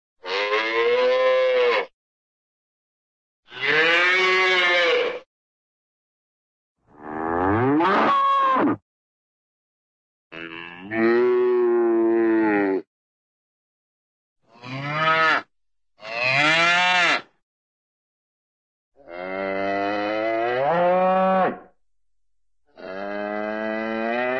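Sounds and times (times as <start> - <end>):
cartoon cow calf mooing: 0.2 - 1.9, 3.5 - 5.2, 7.0 - 8.8, 10.3 - 12.8, 14.6 - 17.3, 19.0 - 21.6, 22.8 - 24.3.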